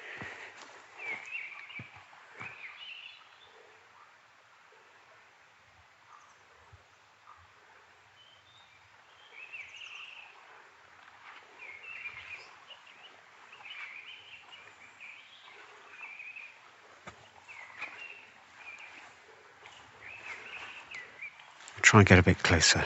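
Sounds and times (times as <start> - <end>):
mistle thrush singing in fluting phrases: 1.0 - 3.6, 8.2 - 10.5, 11.3 - 22.2
soft rustling: 10.9 - 21.8
speech: 21.9 - 22.8.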